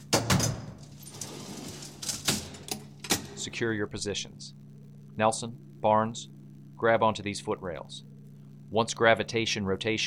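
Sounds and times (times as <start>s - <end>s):
mechanical clunks and rattles of a door worked open by hand: 0.0s - 3.5s
low hum: 0.0s - 10.0s
speech: 3.4s - 4.6s, 5.2s - 8.1s, 8.7s - 10.0s.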